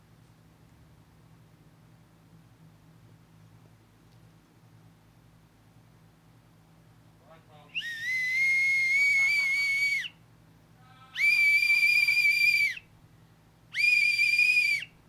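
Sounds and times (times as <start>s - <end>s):
low hum: 0.0s - 15.0s
shrill whistle blasts: 7.7s - 10.2s, 11.2s - 12.9s, 13.7s - 15.0s.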